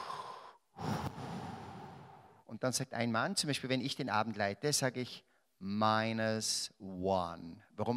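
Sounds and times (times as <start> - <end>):
deep breath drawn during a guided group exercise: 0.0 - 2.4
speech: 2.5 - 7.9.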